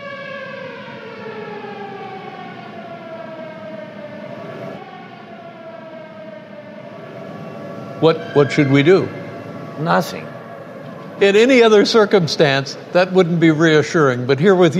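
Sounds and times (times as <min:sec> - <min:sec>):
air raid siren wailing: 0:00.0 - 0:14.7
speech: 0:08.0 - 0:09.2, 0:09.8 - 0:10.4, 0:11.2 - 0:14.7.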